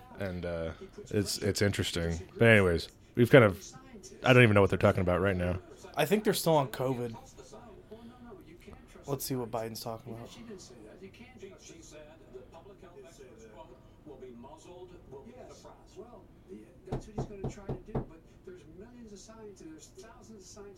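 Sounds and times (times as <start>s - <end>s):
talk: 0.0s - 20.7s
speech: 0.2s - 7.4s, 9.1s - 20.7s
firm knocking on a door: 16.9s - 18.2s.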